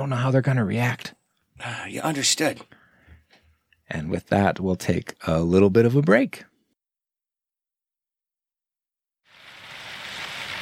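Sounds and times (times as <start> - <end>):
speech: 0.0 - 2.8, 3.9 - 6.5
early morning rain falling: 9.3 - 10.6.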